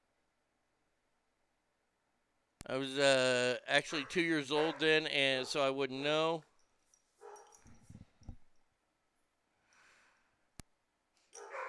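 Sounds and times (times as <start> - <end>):
speech: 2.6 - 6.5
dog barks indoors: 3.9 - 5.7, 7.2 - 7.6, 11.4 - 11.6.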